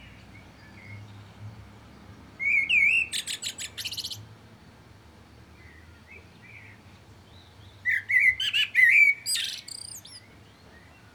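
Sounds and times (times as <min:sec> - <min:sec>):
common blackbird Turdus merula singing: 0:02.4 - 0:04.2, 0:07.4 - 0:10.9.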